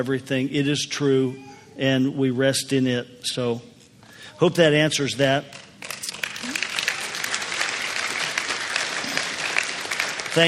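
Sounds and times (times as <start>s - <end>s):
speech: 0.0s - 3.7s, 4.3s - 5.6s
crowd applauding: 5.8s - 10.4s.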